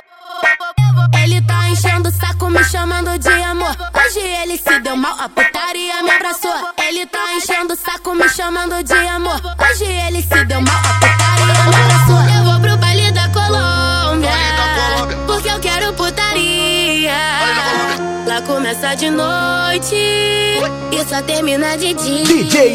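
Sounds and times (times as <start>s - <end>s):
baile funk music: 0.4s - 22.7s.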